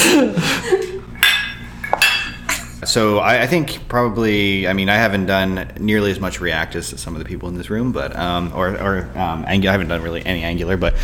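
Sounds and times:
laughter: 0.0 - 1.1
glasses clinking in a toast: 1.2 - 2.8
speech: 2.9 - 11.0.

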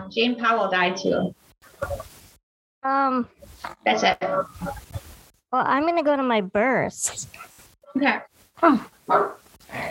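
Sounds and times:
speech: 0.1 - 2.1, 2.8 - 9.8
dog barking and whining: 9.0 - 9.5.

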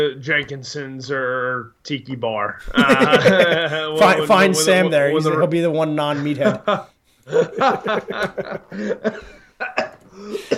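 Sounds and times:
speech: 0.0 - 10.5
laughter: 2.7 - 4.5, 6.1 - 10.5
person imitating a raspy sputtering cough: 9.6 - 10.5.

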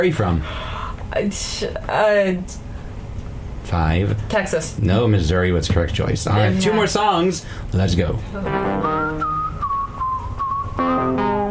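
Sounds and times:
speech: 0.0 - 2.7, 3.7 - 9.4
musical backing: 8.3 - 11.4
whistled melody in a song: 8.6 - 11.4.

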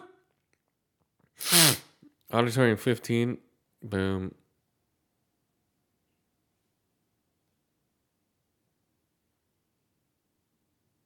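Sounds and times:
person sneezing: 1.4 - 2.0
speech: 2.3 - 4.4.

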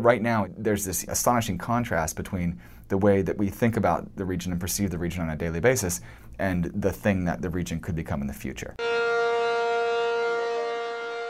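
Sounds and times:
speech: 0.0 - 9.6
refinery emergency siren wailing: 8.8 - 11.2.

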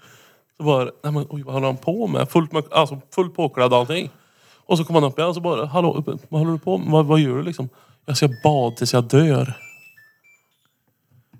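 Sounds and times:
speech: 0.6 - 9.6
phone ringing with electronic tones: 5.7 - 10.8.

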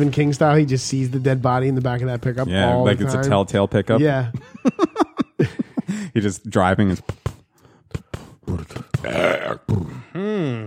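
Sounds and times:
speech: 0.0 - 5.0, 6.2 - 7.2
laughter: 4.0 - 6.3
loud burp after eating chili: 9.0 - 10.6.

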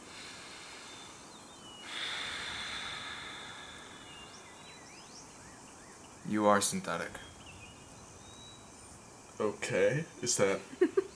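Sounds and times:
man breathing in deeply through the nose: 0.0 - 4.5
speech: 6.3 - 7.3, 9.4 - 11.1.

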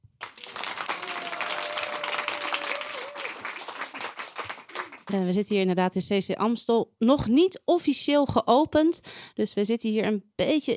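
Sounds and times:
audience applause in a theatre hall: 0.2 - 5.1
speech: 5.1 - 10.7.

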